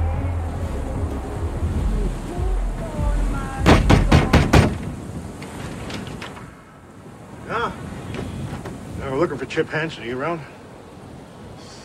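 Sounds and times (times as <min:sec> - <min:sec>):
outdoor wind rumble: 0:00.0 - 0:11.8
heavy banging on a front door from the porch: 0:03.6 - 0:04.9
speech: 0:09.2 - 0:10.6.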